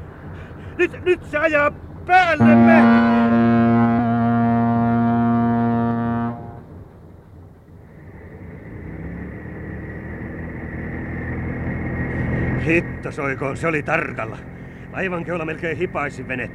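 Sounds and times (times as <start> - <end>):
heavy engine rumble of a large passing vessel: 0.0 - 16.5
speech: 0.8 - 3.1, 12.7 - 16.5
deep blaring ship's horn: 2.4 - 6.8.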